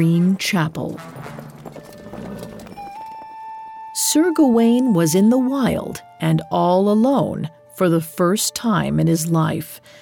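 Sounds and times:
speech: 0:00.0 - 0:01.3, 0:04.0 - 0:09.9
horse hooves clip-clopping as a rider sets off into the countryside: 0:00.0 - 0:03.6.

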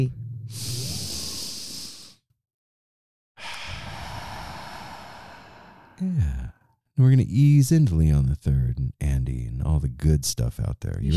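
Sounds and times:
speech: 0:00.0 - 0:00.7, 0:06.0 - 0:11.1
deep breaths taken together: 0:00.5 - 0:02.3, 0:03.4 - 0:06.7.

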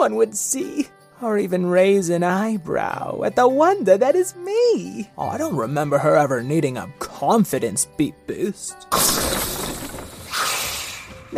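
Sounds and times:
speech: 0:00.0 - 0:09.4
something big crashing through a school building with shattering debris: 0:08.9 - 0:10.6.

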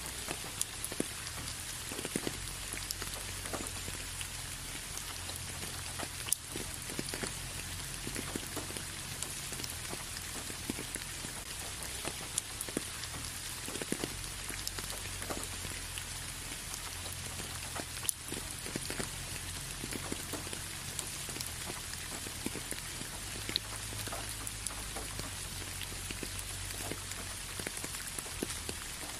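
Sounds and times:
steady spring rain hiss: 0:00.0 - 0:29.1.

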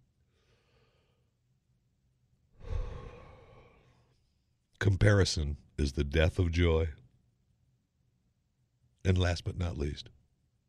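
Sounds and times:
deep breath in and out: 0:00.2 - 0:01.4, 0:02.5 - 0:04.4
speech: 0:04.8 - 0:07.0, 0:09.0 - 0:10.2.

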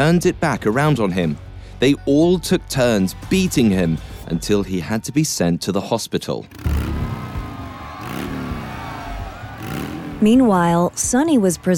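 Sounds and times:
speech: 0:00.0 - 0:06.9, 0:10.2 - 0:11.7
motorcycle engines revving and roaring as bikes race down a main street: 0:06.5 - 0:11.7.

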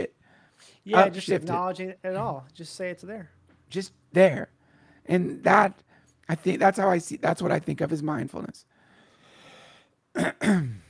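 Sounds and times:
speech: 0:00.8 - 0:08.7, 0:10.2 - 0:10.8
forceful coughs: 0:10.1 - 0:10.8.

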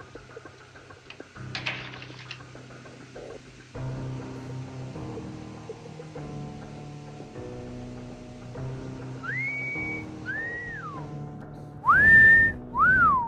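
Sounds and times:
person whistling: 0:09.2 - 0:11.0, 0:11.8 - 0:13.2.

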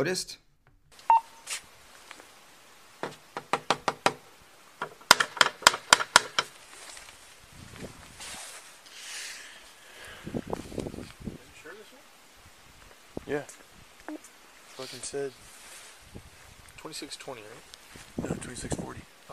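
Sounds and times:
speech: 0:00.0 - 0:00.4, 0:17.0 - 0:19.1
rustling: 0:00.9 - 0:03.3, 0:06.2 - 0:11.2, 0:12.8 - 0:18.3
police body camera beep: 0:01.1 - 0:01.4
police officer knocking on a door: 0:03.0 - 0:04.2, 0:04.8 - 0:06.5.

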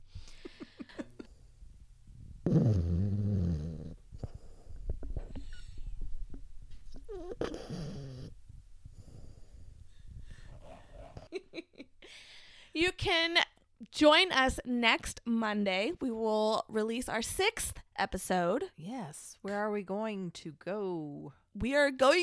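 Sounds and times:
dog snoring: 0:02.4 - 0:04.8, 0:07.0 - 0:09.7
speech: 0:02.5 - 0:03.2, 0:12.8 - 0:22.2.

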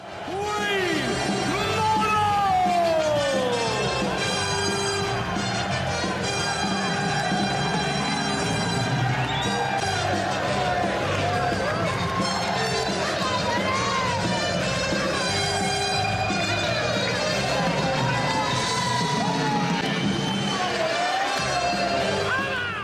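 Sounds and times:
packed arena crowd cheering and whooping: 0:00.0 - 0:22.8
player shouting excitedly during his walk-on entrance: 0:00.2 - 0:04.2.

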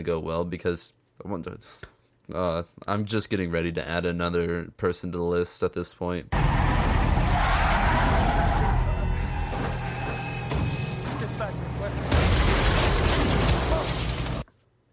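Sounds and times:
speech: 0:00.0 - 0:06.6
cement mixer crashing into a police car: 0:06.4 - 0:14.5.

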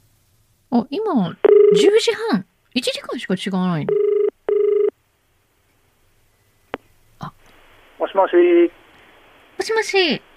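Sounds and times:
speech: 0:00.7 - 0:04.1, 0:08.1 - 0:08.8, 0:09.6 - 0:10.3
telephone ringback buzzing tone on an outgoing call: 0:03.9 - 0:04.9.

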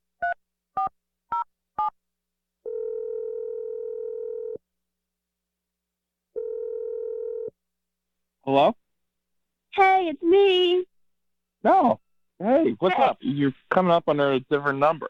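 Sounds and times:
telephone ringing tone: 0:02.6 - 0:04.6, 0:06.4 - 0:07.5
speech: 0:08.5 - 0:08.8, 0:10.0 - 0:10.9, 0:11.6 - 0:15.0.

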